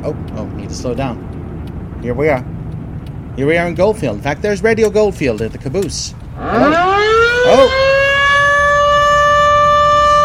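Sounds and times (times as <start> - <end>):
speech: 0.0 - 1.3, 2.0 - 2.6, 3.4 - 8.0
town noon siren wailing for the miners: 6.4 - 10.2.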